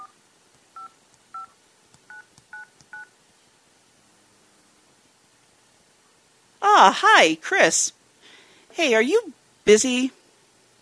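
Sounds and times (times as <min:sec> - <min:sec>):
dual-tone phone keypad beeps of a number being dialed: 0:00.8 - 0:01.5, 0:02.1 - 0:03.1
speech: 0:06.8 - 0:08.0, 0:08.8 - 0:10.2.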